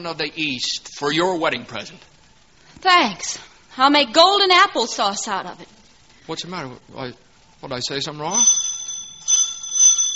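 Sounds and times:
speech: 0:00.0 - 0:02.1, 0:02.8 - 0:08.7
doorbell ringing with a high-pitched metallic trill: 0:08.4 - 0:10.1.

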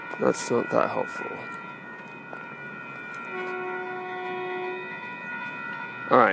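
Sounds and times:
approaching train rumbling on a cold day: 0:00.0 - 0:06.3
speech: 0:00.2 - 0:01.6, 0:06.1 - 0:06.3
sustained horn-like train tones: 0:03.0 - 0:06.3.

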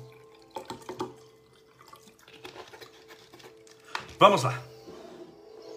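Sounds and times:
water poured into a glass: 0:00.0 - 0:03.9
small drips of water: 0:00.0 - 0:04.4
speech: 0:04.2 - 0:04.7.

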